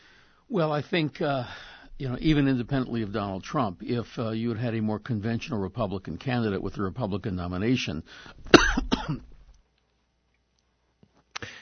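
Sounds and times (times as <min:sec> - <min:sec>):
speech: 0:00.5 - 0:09.3
man coughing: 0:08.5 - 0:09.4.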